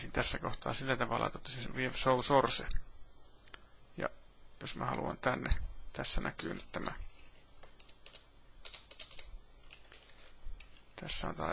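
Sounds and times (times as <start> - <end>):
speech: 0.1 - 2.9, 4.0 - 7.1, 11.0 - 11.5
typing on a computer keyboard in a web page editor: 7.1 - 10.0.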